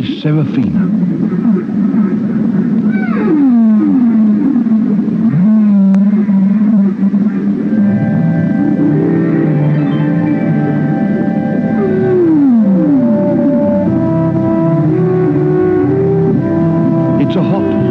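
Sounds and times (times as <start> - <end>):
speech: 0.2 - 1.5
humpback whale song moans and sweeps: 1.3 - 17.8
higher-pitched humpback whale squeals: 2.8 - 7.4, 9.3 - 10.7.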